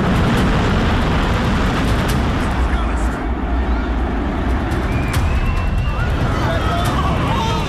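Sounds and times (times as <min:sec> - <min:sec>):
massive building collapsing with roaring rumble: 0:00.0 - 0:07.6
faint crowd commotion: 0:02.4 - 0:07.6.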